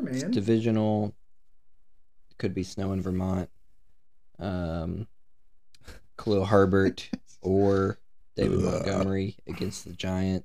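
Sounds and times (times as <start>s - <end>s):
speech: 0.1s - 1.2s, 2.4s - 3.6s, 4.4s - 5.2s, 5.8s - 10.4s
man laughing: 6.7s - 7.3s
man belching: 8.4s - 9.2s.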